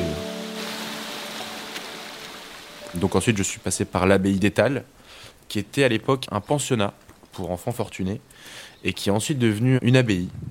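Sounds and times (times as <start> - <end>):
small babbling streams: 0.0 - 4.0
breezy wind: 0.0 - 10.4
speech: 2.9 - 10.4.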